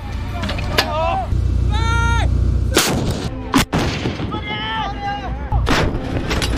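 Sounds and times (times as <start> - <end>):
people shouting: 0.1 - 2.3, 4.3 - 5.6
manually loaded artillery gun firing during a live-fire drill: 2.8 - 4.4, 5.6 - 6.4.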